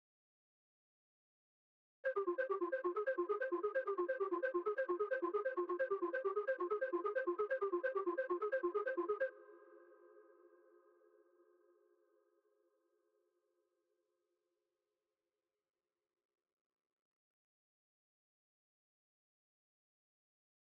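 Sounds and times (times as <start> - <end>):
synth arpeggio melody in F minor at 132 BPM: 2.1 - 9.3.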